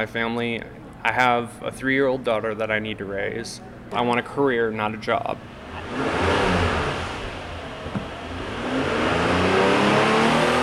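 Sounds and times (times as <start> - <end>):
speech: 0.0 - 6.2
car engine revving in an auto mechanics training shop: 5.4 - 10.6.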